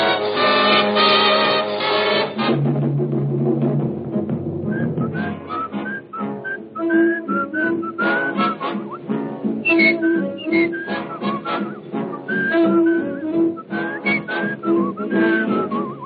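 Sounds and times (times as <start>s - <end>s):
big band accompaniment: 0.0s - 16.0s
person whistling a bright bouncy melody: 4.7s - 16.0s.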